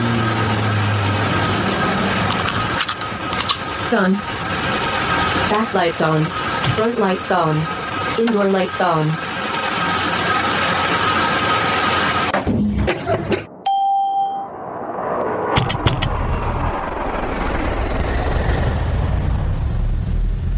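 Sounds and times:
engine roar in a flight simulator game: 0:00.0 - 0:13.6, 0:14.4 - 0:20.5
speech: 0:03.9 - 0:04.4, 0:05.5 - 0:09.3
single electronic chime in a flight simulator game: 0:13.7 - 0:14.6.

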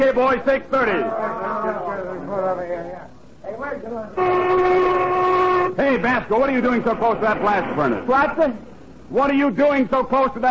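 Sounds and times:
speech: 0:00.0 - 0:10.5
factory lunch whistle blowing: 0:04.2 - 0:05.8.

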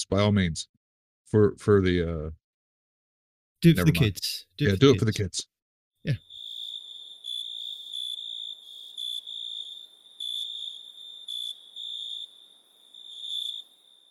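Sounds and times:
speech: 0:00.0 - 0:02.4, 0:03.6 - 0:06.3
crickets chirping in a shrill trill: 0:06.2 - 0:14.1.

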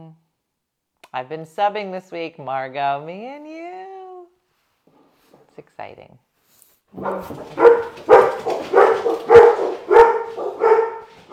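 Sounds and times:
speech: 0:01.1 - 0:03.7, 0:05.6 - 0:06.2, 0:06.9 - 0:08.3
dog barking with a whiny yelping edge: 0:07.0 - 0:11.3.

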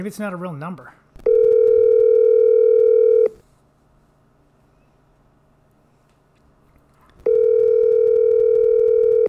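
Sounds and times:
speech: 0:00.0 - 0:01.0
telephone ringback tone: 0:01.3 - 0:03.4, 0:07.3 - 0:09.2.

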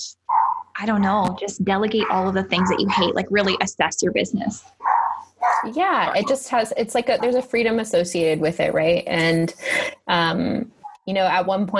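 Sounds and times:
speech: 0:00.0 - 0:04.9, 0:05.6 - 0:11.7
dog barking: 0:00.3 - 0:00.7, 0:02.0 - 0:03.2, 0:04.8 - 0:06.3.

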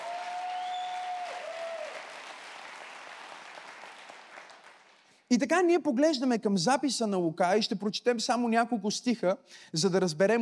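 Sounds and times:
large crowd applauding during a sermon: 0:00.0 - 0:05.2
speech: 0:05.3 - 0:10.4.

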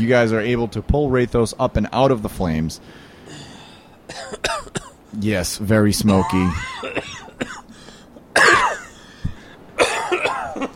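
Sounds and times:
speech: 0:00.0 - 0:03.1, 0:04.1 - 0:04.5, 0:05.1 - 0:07.1
person coughing: 0:04.1 - 0:05.0, 0:06.2 - 0:07.8, 0:08.4 - 0:10.7.

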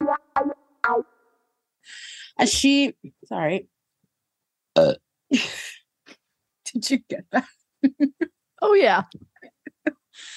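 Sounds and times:
speech: 0:02.4 - 0:03.8, 0:04.8 - 0:05.6, 0:06.8 - 0:10.3
burp through a video call: 0:04.8 - 0:05.0.

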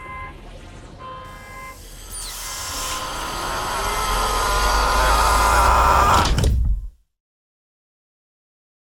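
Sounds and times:
humming mechanical drone: 0:01.3 - 0:06.6
airlock whoosh of pressurized air venting: 0:01.8 - 0:06.4.

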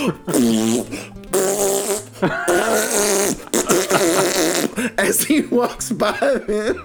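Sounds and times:
laughter: 0:00.0 - 0:01.1, 0:02.0 - 0:06.8
speech: 0:00.0 - 0:03.5, 0:04.9 - 0:06.8
man blowing wet raspberries imitating farts: 0:00.0 - 0:05.4.

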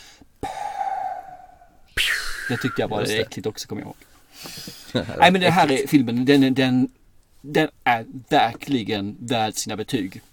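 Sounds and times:
short sharp breathy burst: 0:00.0 - 0:02.6
person imitating wheezing breath through blocked airway: 0:00.4 - 0:02.5
speech: 0:02.5 - 0:10.3
laughter: 0:04.8 - 0:05.7.

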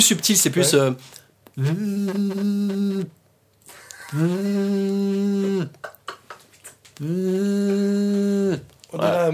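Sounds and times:
speech: 0:00.0 - 0:06.0, 0:07.0 - 0:09.3
voice imitating an iPhone ringtone by humming: 0:01.6 - 0:03.2, 0:04.0 - 0:05.8, 0:07.0 - 0:08.7.

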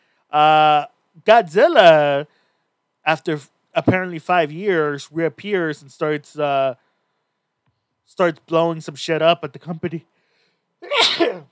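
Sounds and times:
speech: 0:00.3 - 0:02.4, 0:03.1 - 0:06.8, 0:08.1 - 0:10.1, 0:10.8 - 0:11.5
person sneezing: 0:10.8 - 0:11.5.

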